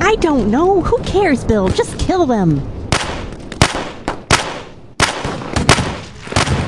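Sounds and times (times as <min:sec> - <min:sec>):
speech: 0:00.1 - 0:02.7
heavy handgun shots: 0:02.9 - 0:06.6.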